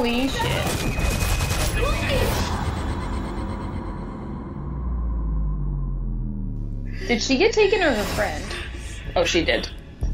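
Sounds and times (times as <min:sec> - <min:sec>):
rapid gunshots in a club from a film trailer: 0:00.2 - 0:02.9
low rumbling noise: 0:02.4 - 0:10.0
speech: 0:07.1 - 0:08.6, 0:09.2 - 0:09.8.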